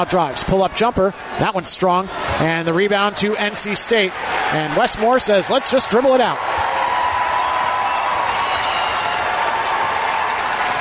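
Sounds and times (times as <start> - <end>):
speech: 0.0 - 6.9
large arena crowd cheering: 0.0 - 10.7
large arena crowd clapping: 2.7 - 10.7.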